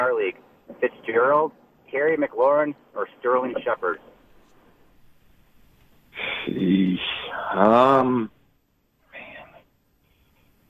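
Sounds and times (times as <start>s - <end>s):
speech: 0.2s - 4.1s, 6.2s - 8.4s
heavy breathing from a man: 6.2s - 7.6s
man making drawn-out hesitant hums and groans: 6.2s - 8.3s.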